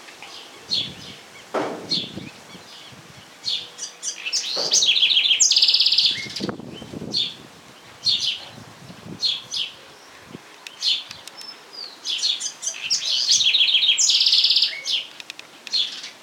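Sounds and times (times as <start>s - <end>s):
wren song of rapid bubbling chatter and buzzy trill: 0.2s - 16.2s.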